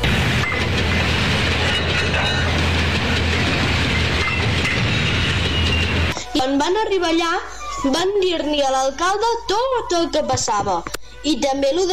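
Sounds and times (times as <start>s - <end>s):
high-speed train to Wuhan China rolling along the rails: 0.0s - 6.2s
speech: 6.6s - 11.9s.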